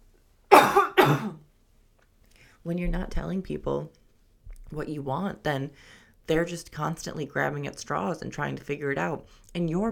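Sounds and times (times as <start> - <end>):
person coughing: 0.5 - 1.4
speech: 2.6 - 4.0, 4.7 - 9.8.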